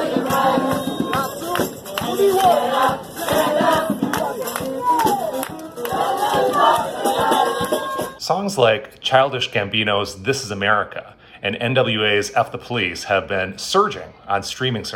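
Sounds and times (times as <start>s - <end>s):
large crowd singing together outdoors: 0.0s - 8.2s
speech: 8.3s - 14.9s.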